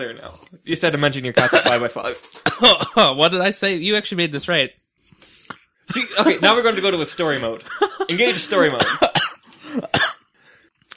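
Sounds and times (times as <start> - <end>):
speech: 0.0 - 4.8, 5.9 - 9.1
sharp throaty cough: 1.4 - 3.1, 8.2 - 10.2
laughter: 5.9 - 9.0.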